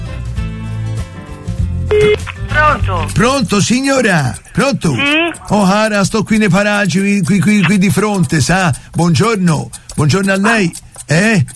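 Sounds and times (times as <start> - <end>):
music: 0.0 - 8.2
electronic telephone tone from a phone call being dialed: 1.9 - 2.3
speech: 2.6 - 11.5.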